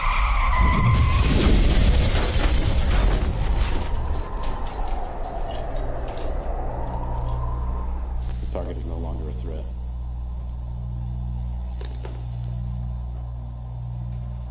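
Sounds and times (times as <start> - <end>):
loud violent car crash: 0.0 - 6.8
car tires screeching: 0.0 - 9.1
rumbling settling noise after a car crash: 0.5 - 14.4.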